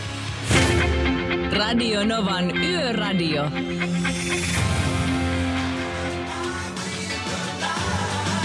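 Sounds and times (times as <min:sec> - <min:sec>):
solid bass line: 0:00.0 - 0:08.4
speech: 0:01.6 - 0:04.8
song with sung vocals played at a button press: 0:02.8 - 0:08.4.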